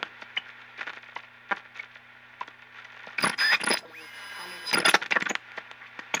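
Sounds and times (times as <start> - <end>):
radio static: 3.2 - 5.0.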